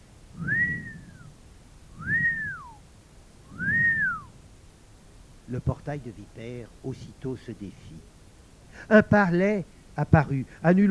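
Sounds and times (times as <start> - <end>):
whistled notes rising then falling in pitch: 0.4 - 1.3, 2.0 - 2.8, 3.5 - 4.4
speech: 5.5 - 8.2, 8.8 - 10.8.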